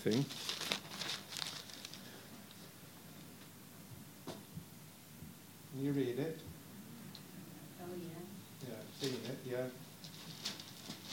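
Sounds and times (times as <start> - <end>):
speech: 0.0 - 0.8, 5.8 - 6.5, 7.9 - 9.9
newspaper pages rustling and crinkling: 0.0 - 2.2, 8.9 - 11.1.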